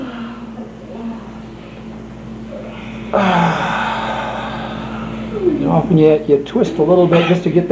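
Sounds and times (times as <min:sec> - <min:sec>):
low hum: 0:00.0 - 0:07.7
person inhaling and yawning: 0:02.5 - 0:05.5
speech: 0:05.7 - 0:07.7.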